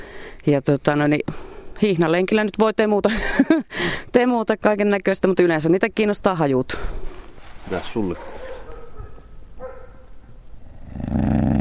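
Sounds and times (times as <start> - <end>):
speech: 0.4 - 8.4
dogs barking: 8.1 - 10.4
dogs growling: 10.7 - 11.6.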